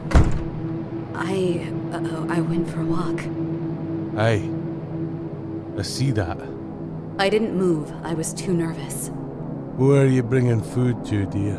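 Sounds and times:
door shutting: 0.0 - 0.6
faint tonal murmur in the room: 0.0 - 11.5
speech: 1.2 - 3.4, 4.2 - 4.6, 5.8 - 6.6, 7.2 - 9.2, 9.8 - 11.5.

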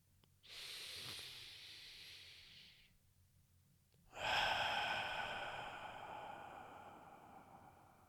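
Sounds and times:
deep intentional breath in through the mouth and exhale: 0.4 - 2.9, 4.1 - 8.0.

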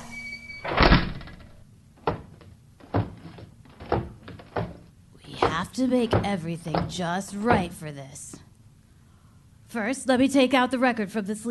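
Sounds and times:
door shutting with a heavy thunk: 0.0 - 7.8
soft thuds: 2.0 - 7.9
speech: 5.6 - 8.4, 9.7 - 11.4.

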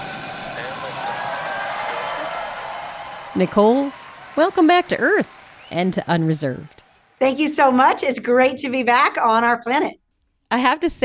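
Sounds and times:
rocket engines roaring at launch ignition: 0.0 - 6.8
speech: 3.4 - 11.0.

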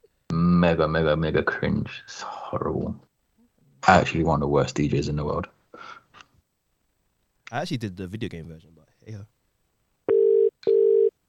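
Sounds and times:
speech: 0.7 - 3.1, 3.8 - 6.0, 7.5 - 9.3
telephone ringback tone: 10.1 - 11.1.

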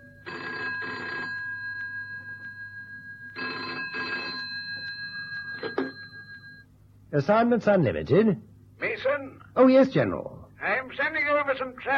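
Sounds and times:
old-fashioned telephone bell ringing: 0.0 - 6.7
speech: 7.1 - 8.5, 9.6 - 11.9.

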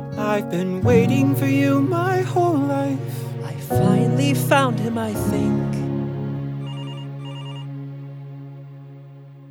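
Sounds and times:
speech: 0.3 - 5.8
telephone ringing with an electronic trilling tone: 6.6 - 7.7.

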